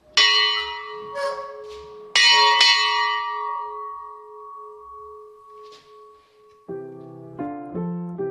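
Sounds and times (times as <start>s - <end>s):
bronze bell from 1598 struck and ringing: 0.0s - 6.8s
quick run of brighter higher chimes: 0.2s - 6.7s.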